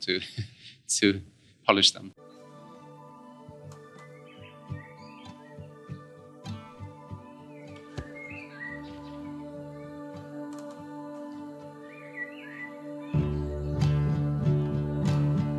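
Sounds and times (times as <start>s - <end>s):
speech: 0.0s - 2.3s
calm musical track with steady plucked notes: 2.2s - 15.5s
birds chirping and twittering: 3.7s - 10.4s, 11.7s - 13.4s.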